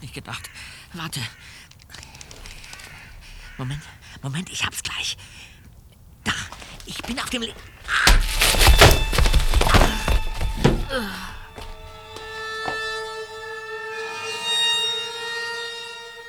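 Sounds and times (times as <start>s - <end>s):
speech: 0.2s - 1.7s, 3.6s - 5.4s, 6.9s - 8.2s, 10.9s - 11.3s
dull thuds and scuffles: 6.6s - 13.1s
solid blow striking the back of a head: 7.9s - 13.1s.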